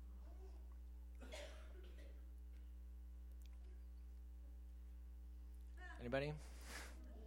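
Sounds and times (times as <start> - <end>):
steady electrical hum: 0.0 - 7.2
people coughing in a large room: 1.2 - 2.7
speech: 6.0 - 6.6.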